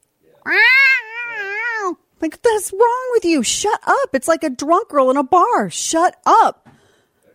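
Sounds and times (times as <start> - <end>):
speech: 0.4 - 0.8, 2.2 - 6.8
person imitating a long wavering cat yowl: 0.4 - 2.0.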